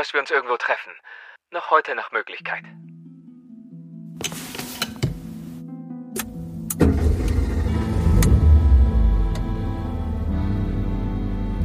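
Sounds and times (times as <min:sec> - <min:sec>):
speech: 0:00.0 - 0:02.8
car engine turning over and rumbling as the vehicle moves off: 0:06.7 - 0:10.9.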